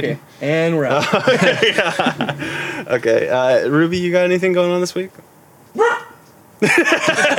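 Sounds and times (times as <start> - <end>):
speech: 0.0 - 6.0, 6.6 - 7.3
laughter: 0.9 - 3.3, 6.6 - 7.3
dog barking: 5.8 - 6.2.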